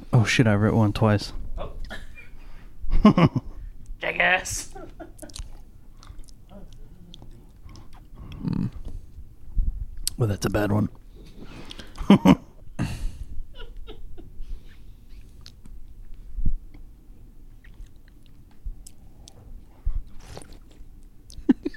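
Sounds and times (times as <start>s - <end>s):
low steady rumble: 0.0s - 21.7s
speech: 0.1s - 1.4s, 3.0s - 4.8s, 10.2s - 11.0s, 12.1s - 12.5s
wet slurping and smacking mouth noises: 5.2s - 9.0s, 17.5s - 21.0s.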